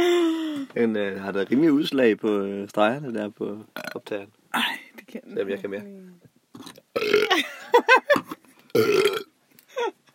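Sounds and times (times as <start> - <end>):
speech: 0.8 - 6.3, 7.4 - 8.2, 8.8 - 9.1
loud croaking burps: 3.8 - 4.7, 6.5 - 7.4, 8.2 - 9.3.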